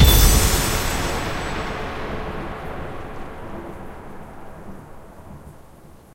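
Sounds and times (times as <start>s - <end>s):
big win hit: 0.0s - 4.6s.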